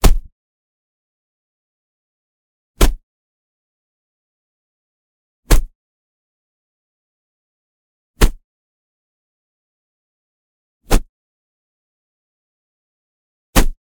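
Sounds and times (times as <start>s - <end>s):
leather flog hit smack: 0.0s - 0.3s, 2.8s - 3.0s, 5.5s - 5.7s, 8.2s - 8.4s, 10.9s - 11.1s, 13.6s - 13.8s.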